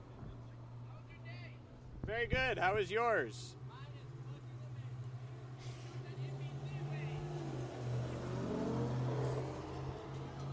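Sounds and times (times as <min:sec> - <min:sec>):
steady low engine hum: 0:00.0 - 0:10.5
speech: 0:02.1 - 0:03.6
car accelerating as it drives past: 0:04.7 - 0:10.5.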